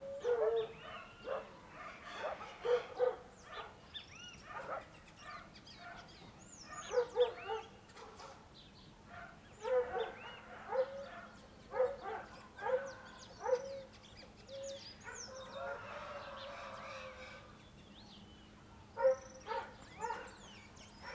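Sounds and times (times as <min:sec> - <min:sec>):
dog barking: 0:00.2 - 0:03.8, 0:04.5 - 0:06.1, 0:06.7 - 0:08.4, 0:09.1 - 0:13.9, 0:15.0 - 0:16.0, 0:19.0 - 0:21.1.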